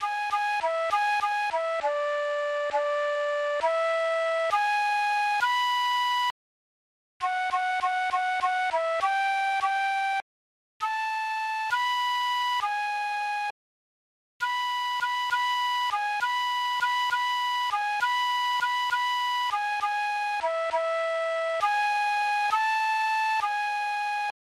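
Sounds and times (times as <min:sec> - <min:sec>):
flute: 0:00.0 - 0:06.4, 0:07.2 - 0:10.2, 0:10.8 - 0:13.6, 0:14.4 - 0:24.4.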